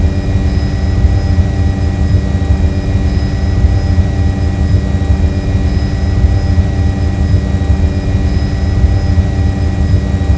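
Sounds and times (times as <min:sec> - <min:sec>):
plane drone: 0:00.0 - 0:10.3.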